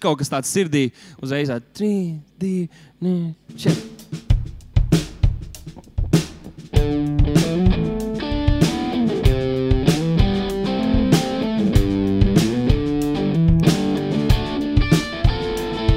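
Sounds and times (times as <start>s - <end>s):
speech: 0.0s - 4.3s
live band playing an upbeat instrumental piece: 3.5s - 15.9s
sharp drum hits: 3.5s - 15.9s.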